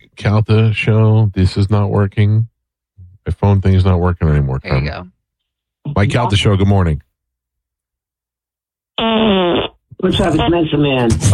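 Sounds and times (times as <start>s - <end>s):
speech: 0.2s - 2.5s, 3.2s - 5.2s, 5.8s - 7.1s, 9.1s - 11.3s
fart: 9.0s - 9.8s.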